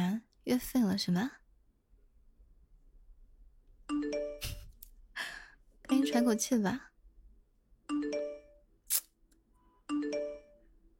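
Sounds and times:
speech: 0:00.5 - 0:01.4, 0:06.0 - 0:06.9
phone message notification two-note electronic chime: 0:03.9 - 0:04.7, 0:05.9 - 0:06.6, 0:07.9 - 0:08.7, 0:09.7 - 0:10.7
sharp click: 0:08.9 - 0:09.1.

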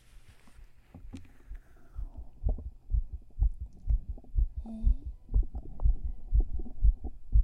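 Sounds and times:
soft rustling: 0:00.0 - 0:02.3
fast heartbeat heard through chest: 0:01.4 - 0:07.4.

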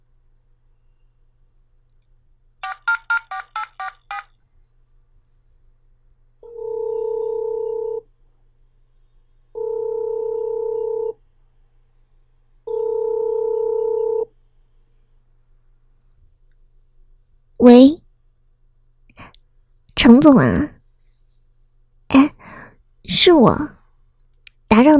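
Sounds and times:
telephone ringback tone while placing a call: 0:02.6 - 0:04.3, 0:06.5 - 0:08.0, 0:09.6 - 0:11.2, 0:12.7 - 0:14.3
speech: 0:20.1 - 0:20.7, 0:23.2 - 0:23.8, 0:24.8 - 0:24.9.

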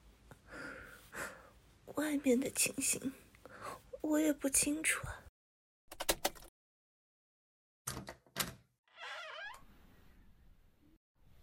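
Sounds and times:
speech: 0:02.1 - 0:03.3, 0:04.0 - 0:05.2
door creaking as it swings open: 0:07.9 - 0:10.1.

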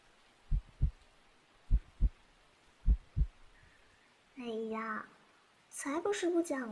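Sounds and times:
faint hiss: 0:00.0 - 0:06.6
human heartbeat heard with an ear against the chest: 0:00.5 - 0:01.0, 0:01.7 - 0:02.2, 0:02.8 - 0:03.5
speech: 0:04.4 - 0:05.2, 0:05.8 - 0:06.6.

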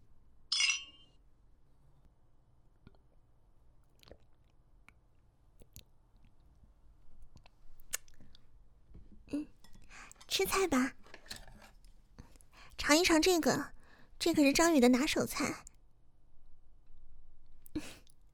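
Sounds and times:
wine glasses clinking in a toast at a dinner at home: 0:00.5 - 0:01.0
tableware taps and clicks: 0:00.5 - 0:01.1
speech: 0:10.4 - 0:11.0, 0:12.9 - 0:15.7.

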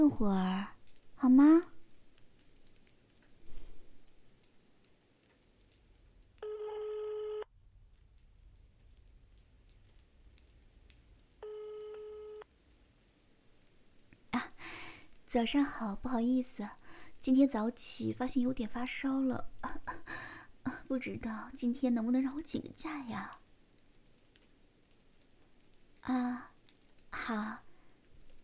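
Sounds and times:
speech: 0:00.0 - 0:01.7, 0:15.3 - 0:20.0, 0:20.9 - 0:23.4, 0:26.0 - 0:26.5, 0:27.1 - 0:27.6
phone call ringing tones: 0:06.4 - 0:07.5, 0:11.4 - 0:12.4.

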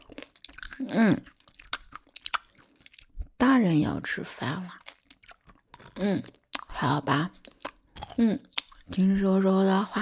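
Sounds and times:
chewing on candy with crisp crunches: 0:00.0 - 0:03.3, 0:04.6 - 0:09.1
speech: 0:00.8 - 0:01.3, 0:03.5 - 0:04.8, 0:06.0 - 0:07.4, 0:08.2 - 0:10.0.

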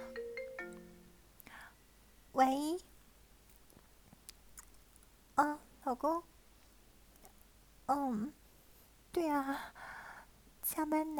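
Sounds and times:
phone ringtone of an incoming call: 0:00.0 - 0:01.1
speech: 0:02.4 - 0:02.9, 0:05.9 - 0:06.3, 0:07.9 - 0:08.4, 0:09.2 - 0:09.8, 0:10.7 - 0:11.1
soft rustling breath: 0:08.4 - 0:10.4.

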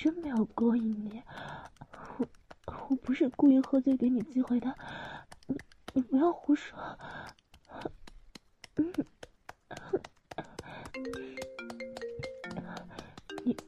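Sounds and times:
speech: 0:00.0 - 0:02.3, 0:03.0 - 0:08.0
phone's melodic ringtone for an incoming call: 0:11.0 - 0:13.6.

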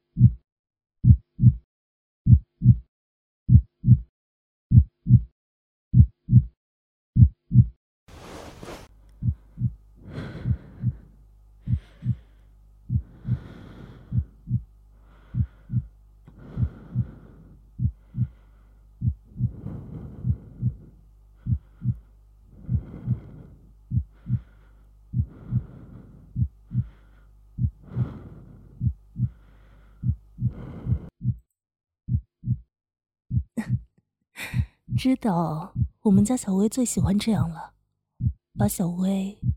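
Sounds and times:
heartbeat thumping in lub-dub pairs: 0:00.0 - 0:00.4, 0:01.0 - 0:01.6, 0:02.3 - 0:02.9, 0:03.5 - 0:04.1, 0:04.7 - 0:05.3, 0:05.9 - 0:06.6, 0:07.2 - 0:07.8, 0:08.5 - 0:18.4, 0:19.0 - 0:27.0, 0:27.6 - 0:31.4, 0:32.1 - 0:32.7, 0:33.3 - 0:36.4, 0:37.0 - 0:37.6, 0:38.2 - 0:38.8, 0:39.4 - 0:39.5
soft breathy rush: 0:08.1 - 0:31.2
speech: 0:34.4 - 0:37.8, 0:38.6 - 0:39.5.

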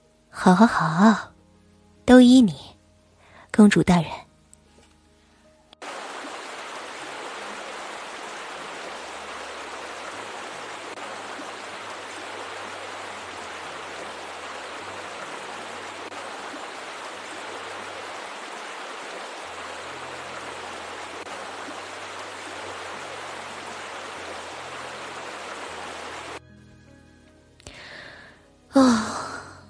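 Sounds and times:
speech: 0:00.4 - 0:01.3, 0:02.1 - 0:02.7, 0:03.6 - 0:04.2
hot shower water running: 0:05.8 - 0:26.4.

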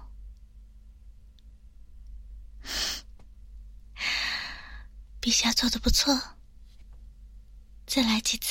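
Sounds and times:
low steady hum: 0:00.0 - 0:08.5
person breathing deeply: 0:02.6 - 0:03.1, 0:04.0 - 0:04.9
speech: 0:05.2 - 0:06.4, 0:07.9 - 0:08.5.

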